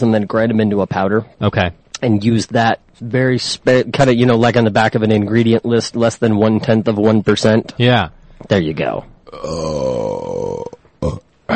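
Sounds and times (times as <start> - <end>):
speech: 0.0 - 11.5
long loud burp after eating a meal: 9.2 - 11.5.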